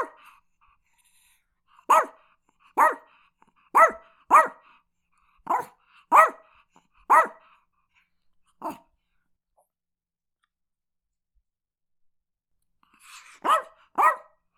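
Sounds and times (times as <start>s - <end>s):
Chihuahua yapping: 3.8s - 4.6s, 5.5s - 6.4s, 7.1s - 7.3s, 13.4s - 14.3s.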